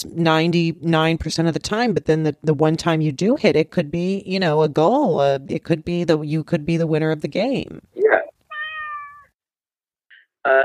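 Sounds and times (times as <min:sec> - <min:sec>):
speech: 0:00.1 - 0:07.9, 0:10.4 - 0:10.6
cat meowing: 0:08.5 - 0:09.3.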